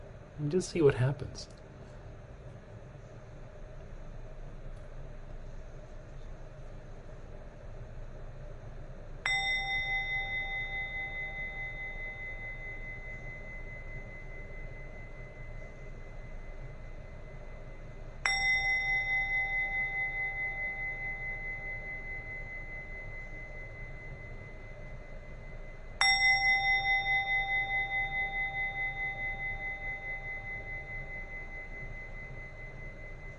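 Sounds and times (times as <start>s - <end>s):
steady low hum: 0.0s - 33.3s
speech: 0.4s - 1.6s
meditation-style bell being struck: 8.9s - 33.3s.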